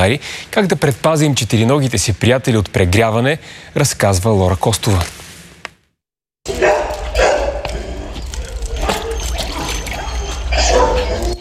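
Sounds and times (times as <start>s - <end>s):
speech: 0.0s - 5.2s
stray dogs at an animal shelter barking and yelping: 6.5s - 11.3s
splashing and trickling water in pools: 8.7s - 10.6s.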